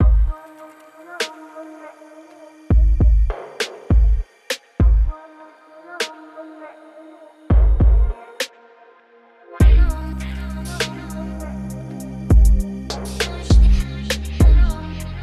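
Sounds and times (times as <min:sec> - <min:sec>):
prominent kick drum in a mix: 0:00.0 - 0:00.4, 0:02.7 - 0:04.2, 0:04.8 - 0:05.1, 0:07.5 - 0:08.2, 0:09.6 - 0:10.0, 0:12.3 - 0:12.7, 0:13.5 - 0:13.8, 0:14.4 - 0:14.8.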